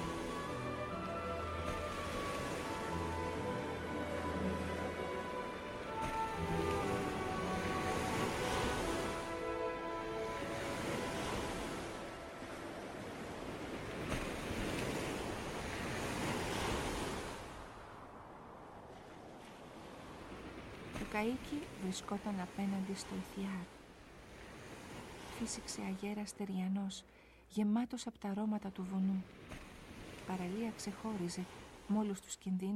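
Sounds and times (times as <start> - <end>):
sea waves lapping: 0.0 - 27.4, 28.8 - 32.7
speech: 21.2 - 23.8, 25.4 - 29.7, 30.3 - 32.7.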